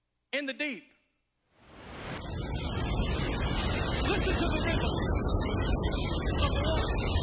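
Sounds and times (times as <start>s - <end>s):
speech: 0.4s - 0.9s, 4.1s - 6.9s
ocean waves with continuous roar of surf: 1.6s - 7.2s.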